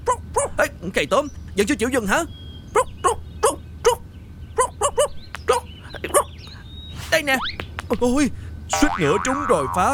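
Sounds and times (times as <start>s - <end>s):
dog barking: 0.0s - 0.6s, 2.8s - 4.0s, 4.6s - 6.3s
faint hum: 0.0s - 9.9s
speech: 0.6s - 2.9s, 7.2s - 9.9s.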